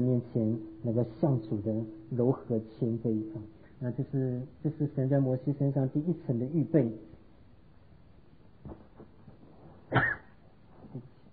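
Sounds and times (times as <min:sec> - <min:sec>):
speech: 0:00.0 - 0:07.1, 0:09.9 - 0:10.2, 0:10.9 - 0:11.1
person coughing: 0:09.9 - 0:10.4.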